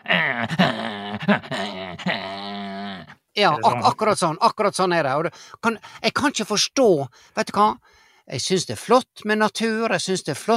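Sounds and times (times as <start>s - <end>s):
person mimicking two dogs barking at each other: 0.0s - 4.0s
speech: 3.4s - 10.5s.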